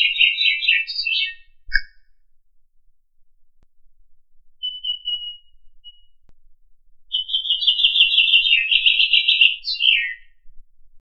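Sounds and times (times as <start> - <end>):
nightingale singing in Lipovka: 0.0 - 2.2, 4.6 - 6.2, 7.1 - 10.6.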